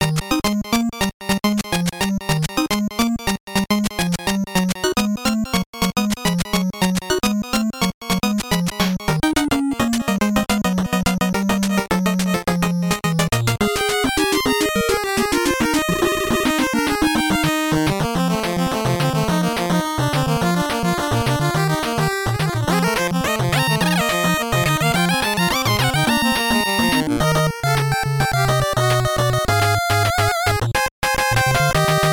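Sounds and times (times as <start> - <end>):
8-bit music for mobile phone ringtones: 0.0 - 32.1.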